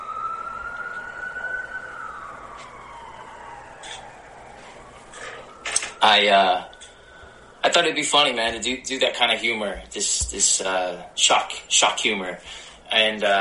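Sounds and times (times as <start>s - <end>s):
ambulance siren passing by: 0.0s - 8.9s
traffic rumble: 0.0s - 13.4s
speech: 6.0s - 6.7s, 7.6s - 13.4s.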